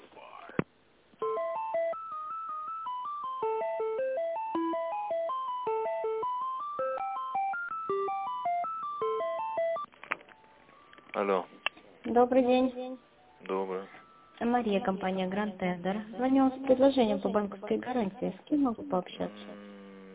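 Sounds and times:
tinny electronic melody over a telephone line during a call transfer: 0:01.2 - 0:11.6, 0:12.5 - 0:17.8
speech: 0:11.2 - 0:12.8, 0:13.5 - 0:19.6.

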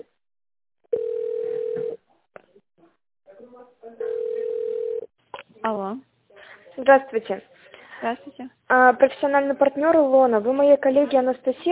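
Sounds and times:
telephone tone while a call is being transferred: 0:01.0 - 0:02.0
speech: 0:05.7 - 0:06.1, 0:06.8 - 0:11.7.

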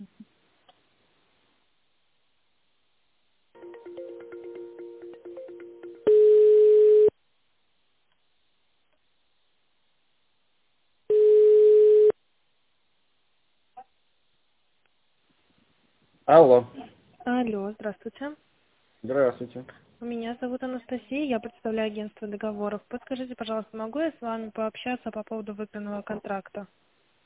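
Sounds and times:
telephone ringback tone while a call connects: 0:03.6 - 0:07.1, 0:11.1 - 0:12.1
speech: 0:16.3 - 0:16.8, 0:17.4 - 0:26.8.

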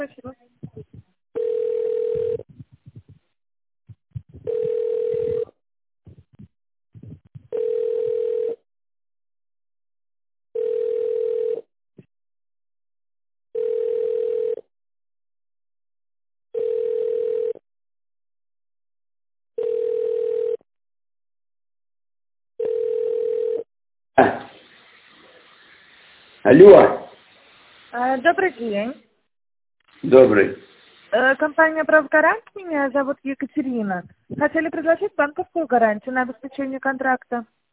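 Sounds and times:
speech: 0:00.0 - 0:00.5, 0:26.5 - 0:27.0, 0:28.2 - 0:29.0, 0:30.0 - 0:37.6
telephone ringback tone while a call is being transferred: 0:01.4 - 0:02.5, 0:04.5 - 0:05.5, 0:07.6 - 0:08.6, 0:10.6 - 0:11.6, 0:13.6 - 0:14.6, 0:16.6 - 0:17.6, 0:19.6 - 0:20.6, 0:22.6 - 0:23.6.

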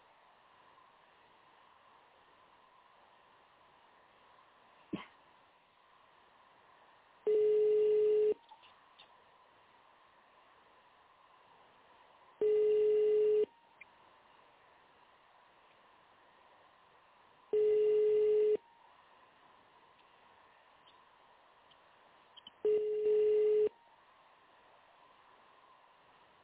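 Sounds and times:
faint hum: 0:00.0 - 0:26.4
telephone ringback tone while waiting for an answer: 0:07.3 - 0:08.4, 0:12.4 - 0:13.5, 0:17.6 - 0:18.6, 0:22.6 - 0:23.8.

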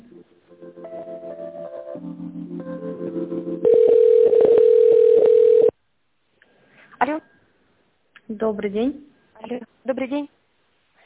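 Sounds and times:
telephone line tones while a call is connected: 0:03.6 - 0:05.7
speech: 0:08.4 - 0:10.4.

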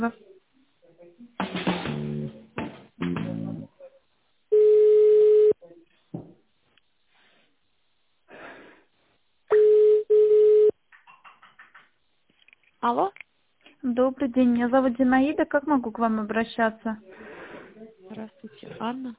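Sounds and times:
speech: 0:00.0 - 0:00.2, 0:14.0 - 0:17.3, 0:18.4 - 0:19.1
telephone line tones while a call is being transferred: 0:04.5 - 0:05.6, 0:09.5 - 0:10.7.

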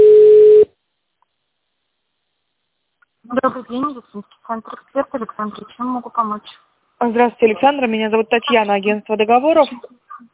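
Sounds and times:
telephone line tone while call is connected to an operator: 0:00.0 - 0:00.7
speech: 0:03.7 - 0:10.0.

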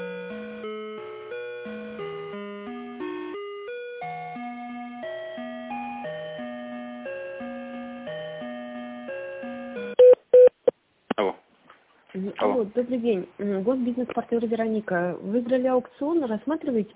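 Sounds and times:
telephone hold tones electronic melody while call is transferred: 0:00.0 - 0:10.2
speech: 0:12.4 - 0:16.9.

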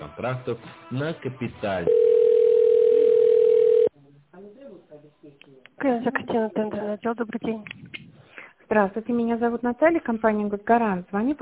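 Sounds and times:
speech: 0:00.2 - 0:02.1, 0:05.3 - 0:07.9, 0:08.7 - 0:11.4
steady single-pitched telephone tone while a call is transferred: 0:01.9 - 0:03.9.

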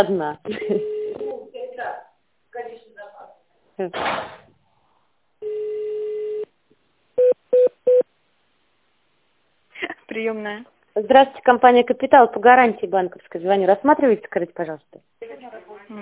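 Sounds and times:
speech: 0:00.0 - 0:01.0, 0:03.8 - 0:04.4, 0:10.1 - 0:16.0
long steady phone tone: 0:00.6 - 0:01.4, 0:05.4 - 0:06.5, 0:07.2 - 0:08.0.

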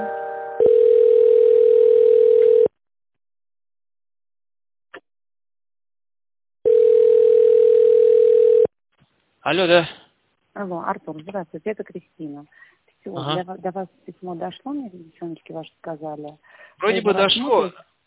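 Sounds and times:
telephone tone while a call is transferred: 0:00.0 - 0:02.7, 0:06.6 - 0:08.7
speech: 0:09.5 - 0:10.0, 0:10.6 - 0:17.9.

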